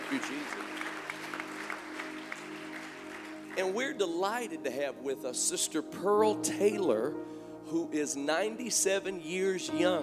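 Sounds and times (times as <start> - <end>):
audience applauding: 0.0 - 3.8
speech: 0.1 - 1.0, 3.6 - 10.0.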